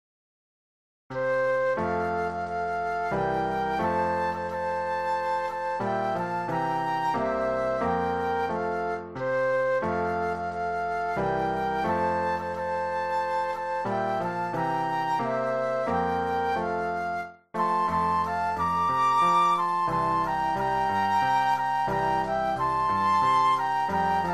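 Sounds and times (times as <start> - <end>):
Christmas flute duet: 1.1 - 24.3
Christmas piano: 1.1 - 24.3.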